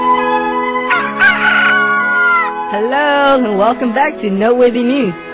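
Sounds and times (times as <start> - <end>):
rooster crowing: 0.2 - 2.7
speech: 3.6 - 5.3.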